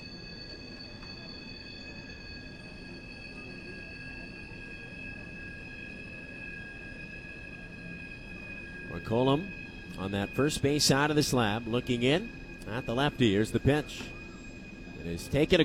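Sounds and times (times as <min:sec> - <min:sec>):
passing train wheels squealing: 0:00.0 - 0:15.6
passing train rumbling: 0:08.8 - 0:15.6
speech: 0:09.1 - 0:14.2, 0:15.0 - 0:15.6.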